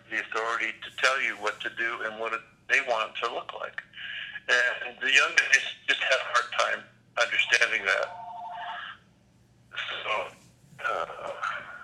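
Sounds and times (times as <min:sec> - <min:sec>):
faint low hum: 0:00.0 - 0:11.8
speech: 0:00.2 - 0:08.2
incoming call phone ringtone: 0:07.4 - 0:09.0.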